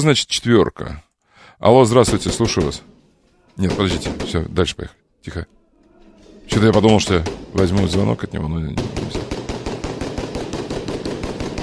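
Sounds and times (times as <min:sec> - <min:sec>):
speech: 0:00.0 - 0:02.9, 0:03.6 - 0:05.6, 0:06.5 - 0:09.3
random gunfire inside a mosque: 0:02.0 - 0:02.9, 0:03.6 - 0:04.6, 0:06.5 - 0:08.2, 0:08.8 - 0:11.6.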